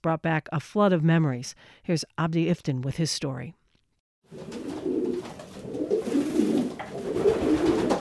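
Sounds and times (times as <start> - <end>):
speech: 0.0 - 3.6
pigeons cooing in a pigeon loft: 4.3 - 7.9.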